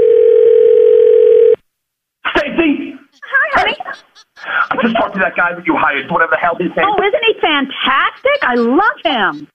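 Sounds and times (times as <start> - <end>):
telephone dial tone while placing a call: 0.0 - 1.6
laughter: 2.3 - 9.5
speech: 4.8 - 9.5.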